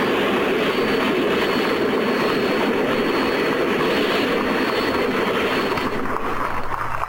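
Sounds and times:
1967 Paxton side-mount turbine race car gas turbine engine at Indianapolis Motor Speedway: 0.0s - 7.0s.

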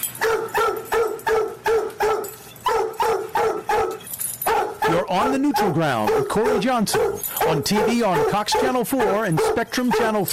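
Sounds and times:
dog barking: 0.2s - 10.3s
speech: 5.1s - 10.3s.

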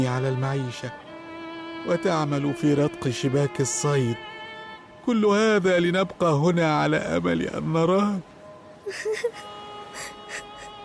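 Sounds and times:
speech: 0.0s - 1.0s, 1.8s - 4.3s, 5.0s - 8.3s, 8.9s - 10.2s
people weeping softly: 8.9s - 10.8s
shaky gasping sobs and breaths: 8.9s - 10.8s
short whimpering cries: 8.9s - 10.8s.

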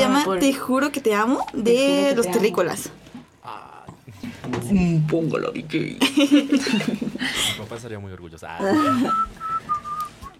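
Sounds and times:
speech: 0.2s - 3.7s, 4.5s - 9.8s
laughter: 6.0s - 7.6s, 8.6s - 9.3s
person whistling a short song melody: 8.9s - 10.3s.

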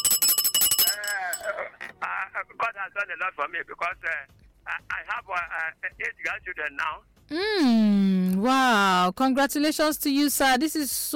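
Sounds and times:
small hand bell ringing in a high-pitched trill: 0.0s - 1.6s
speech: 2.4s - 11.1s.

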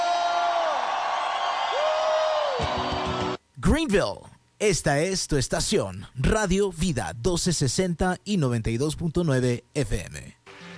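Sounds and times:
whooping shouts of joy: 0.0s - 3.4s
dense wash of crowd noise: 2.4s - 3.4s
speech: 3.7s - 10.4s.

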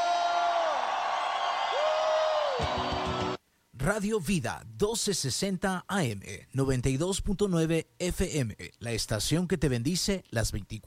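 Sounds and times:
crowd cheering in a dense roar: 0.0s - 3.4s
long rising-and-falling whoops: 0.0s - 3.4s
speech: 3.8s - 10.8s.

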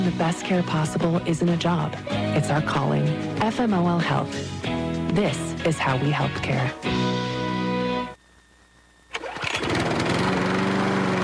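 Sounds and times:
speech: 0.1s - 7.3s
riding lawn mower engine running, starting and idling: 9.1s - 11.2s.

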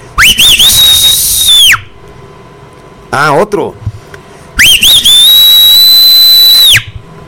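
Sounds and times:
loud piercing human whistle: 0.2s - 1.9s, 4.6s - 7.0s
speech: 3.1s - 3.8s.

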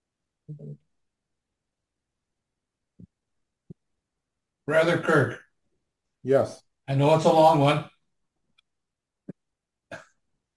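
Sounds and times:
faint room noise: 0.0s - 10.5s
speech: 0.5s - 0.9s, 4.7s - 5.4s, 6.2s - 7.9s
throat clearing: 9.9s - 10.2s.

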